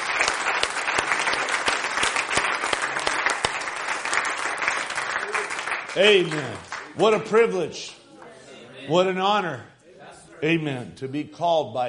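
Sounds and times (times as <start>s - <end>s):
audience applauding: 0.0s - 7.3s
speech: 6.0s - 8.0s, 8.8s - 9.7s, 10.4s - 11.8s.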